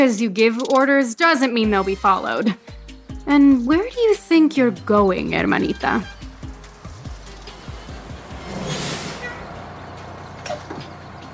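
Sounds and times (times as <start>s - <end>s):
speech: 0.0s - 6.2s
bus idling with a low rumble: 5.4s - 11.3s
bus air brakes releasing: 7.5s - 9.8s.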